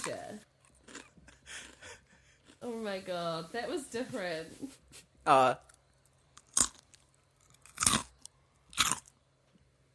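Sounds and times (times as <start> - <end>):
speech: 0.0 - 0.5, 2.6 - 5.7
crunching bite of a snack: 0.0 - 2.6, 5.7 - 9.4
chewing crackles: 0.6 - 2.6, 6.4 - 9.2.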